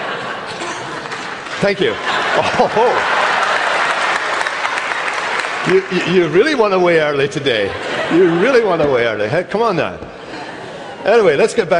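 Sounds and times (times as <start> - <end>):
laughter: 0.0 - 11.7
audience applauding: 1.0 - 7.2
speech: 1.6 - 3.2, 5.6 - 10.2, 11.0 - 11.7.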